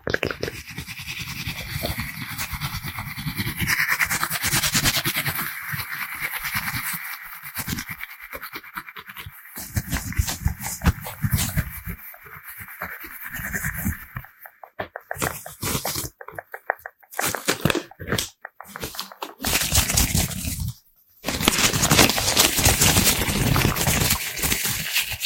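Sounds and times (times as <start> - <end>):
wet mouth clicks: 0.0 - 0.7, 13.0 - 20.4
scratchy rustling: 0.0 - 25.2.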